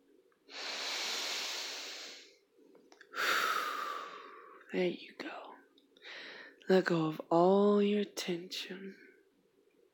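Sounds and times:
slow deep breaths during a relaxation exercise: 0.5s - 2.4s, 3.1s - 4.6s, 6.0s - 6.6s
speech: 4.7s - 5.4s, 6.7s - 9.0s.

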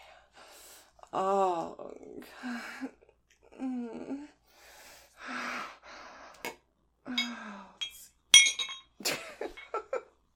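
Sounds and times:
person gasping and moaning: 1.2s - 4.4s
glass clinking: 7.2s - 9.8s.

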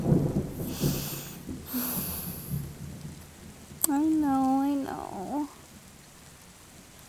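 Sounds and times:
low rolling thunder: 0.0s - 3.8s
steady hiss of rain: 0.0s - 7.0s.

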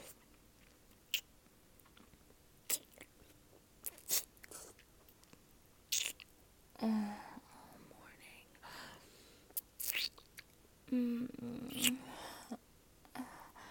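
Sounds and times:
food being bitten and chewed: 0.0s - 6.3s, 9.5s - 10.6s, 11.7s - 12.0s
speech: 6.8s - 7.2s, 10.9s - 12.2s.

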